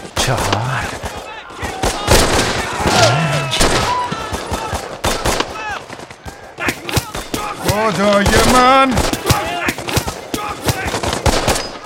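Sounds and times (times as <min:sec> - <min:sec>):
rapid gunfire during a firefight: 0:00.0 - 0:11.8
speech: 0:00.3 - 0:01.0, 0:07.8 - 0:09.1
person shouting orders: 0:02.8 - 0:04.2.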